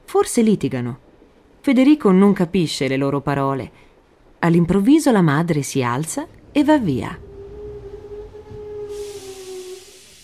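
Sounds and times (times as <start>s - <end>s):
speech: 0.2s - 1.0s, 1.6s - 7.3s
train rumbling and whining as it slows at the station in Venice: 5.9s - 10.2s
train air brakes hissing as it stops: 7.2s - 10.2s.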